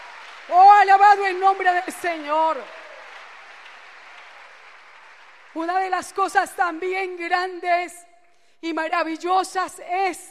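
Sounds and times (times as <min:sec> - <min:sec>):
church congregation applauding during a worship service: 0:00.0 - 0:07.1
speech: 0:00.5 - 0:02.8, 0:05.6 - 0:08.0, 0:08.6 - 0:10.2.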